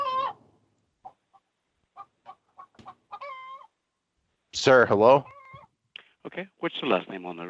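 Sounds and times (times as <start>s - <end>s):
drawn-out chicken squawks: 0.0s - 0.4s, 2.0s - 3.8s, 5.2s - 5.7s
chickens clucking: 0.0s - 3.8s
speech: 4.6s - 5.4s, 6.4s - 7.4s.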